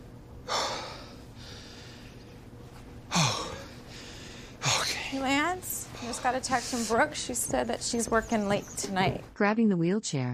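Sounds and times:
man breathing heavily while lying down: 0.4 - 7.4
speech: 5.1 - 10.3.

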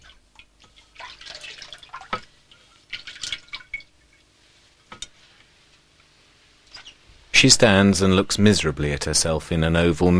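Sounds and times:
water splashing from a porcelain bowl as a woman splashes her face: 0.0 - 4.1
speech: 7.4 - 10.1.

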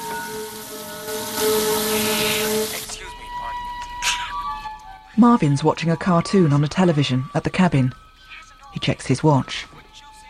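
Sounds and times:
water running from both taps of two sinks: 0.0 - 3.0
speech: 5.2 - 8.0, 8.7 - 9.8.

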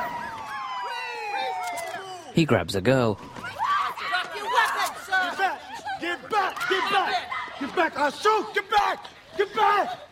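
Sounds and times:
several police sirens wailing: 0.0 - 2.4
speech: 2.4 - 3.6, 6.7 - 10.0
laughter: 5.1 - 8.4.

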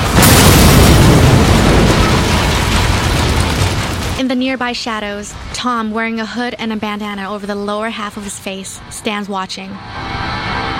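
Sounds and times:
car explosion: 0.0 - 4.2
speech: 4.3 - 10.2.

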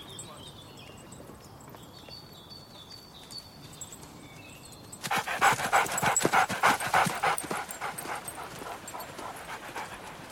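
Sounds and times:
faint outdoor ambience: 0.0 - 10.3
tracker dog panting and whimpering: 5.1 - 10.3.

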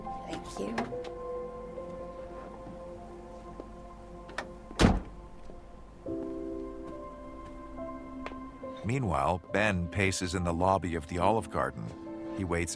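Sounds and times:
speech: 0.6 - 0.8, 8.9 - 12.7
Jeep car door opening: 4.3 - 5.2.

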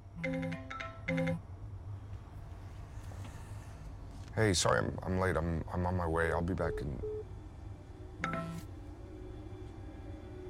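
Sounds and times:
low steady hum: 0.0 - 10.4
phone ringing with an electronic melodic ringtone: 0.2 - 1.4
speech: 4.4 - 7.2.

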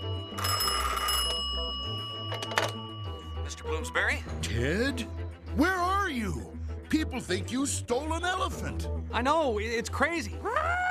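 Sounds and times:
telephone bell ringing: 0.0 - 3.9
steady low tonal background: 0.0 - 9.6
speech: 3.5 - 10.7.

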